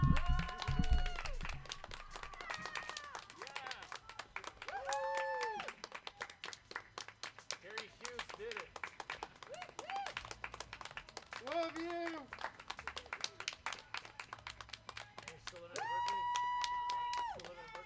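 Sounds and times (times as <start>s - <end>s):
people cheering and whooping: 0.0s - 3.8s, 4.6s - 5.8s, 9.4s - 10.2s, 15.7s - 17.8s
audience clapping: 0.0s - 17.8s.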